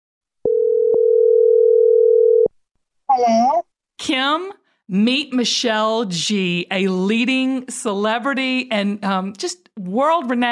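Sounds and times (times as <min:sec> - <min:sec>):
telephone dial tone as a call is placed: 0:00.5 - 0:02.5
speech: 0:03.2 - 0:10.4.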